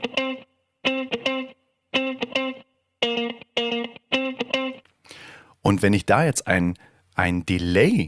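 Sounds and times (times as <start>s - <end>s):
funky electric guitar riff with choppy chord stabs: 0.0s - 5.3s
speech: 5.7s - 8.0s.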